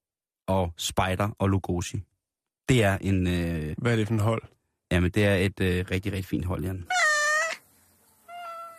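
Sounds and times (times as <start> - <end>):
speech: 0.5 - 2.1, 2.7 - 7.0
cat meowing: 6.9 - 7.6, 8.2 - 8.7.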